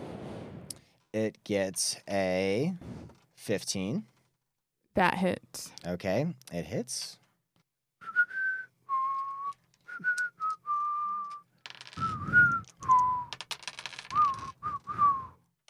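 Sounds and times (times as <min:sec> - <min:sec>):
speech: 0:01.2 - 0:04.1, 0:05.0 - 0:07.2
person whistling a short wavering tune: 0:08.0 - 0:11.4, 0:12.0 - 0:13.3, 0:14.1 - 0:15.4.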